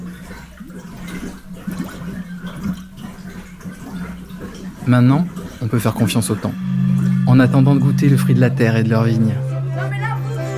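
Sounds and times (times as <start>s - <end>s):
grape juice fermenting and bubbling in wooden barrels in a wine cellar: 0.0s - 9.9s
speech: 4.8s - 6.7s, 7.3s - 9.4s
low steady hum: 5.9s - 10.5s.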